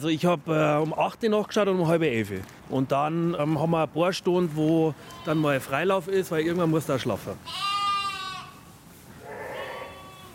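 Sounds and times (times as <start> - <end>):
speech: 0.0 - 7.7
faint rustle: 1.9 - 10.3
sheep bleating in a huge barn: 5.0 - 5.8, 7.4 - 10.3.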